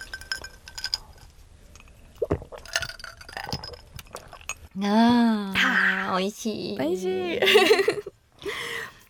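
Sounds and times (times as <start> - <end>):
glasses clinking in a shochu toast: 0.0 - 2.0, 2.6 - 4.7
speech: 4.8 - 5.1, 6.2 - 8.2.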